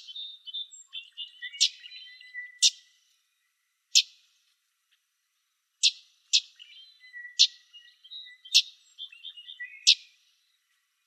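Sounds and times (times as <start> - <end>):
common yellowthroat chip calls in Arizona: 0.0 - 2.9, 3.9 - 4.2, 5.8 - 10.2.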